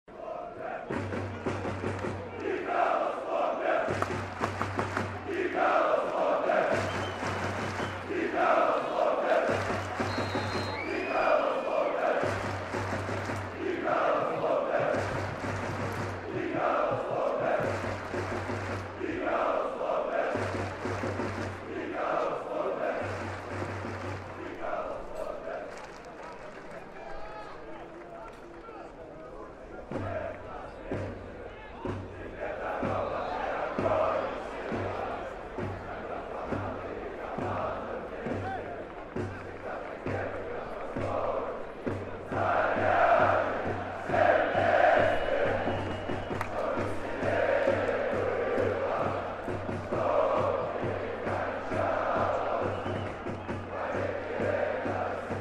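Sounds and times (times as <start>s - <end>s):
fans shouting in a stadium: 0.1s - 55.3s.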